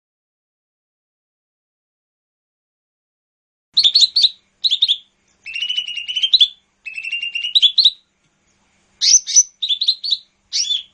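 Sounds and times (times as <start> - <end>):
leafbird chirping and trilling: 3.8 - 10.9.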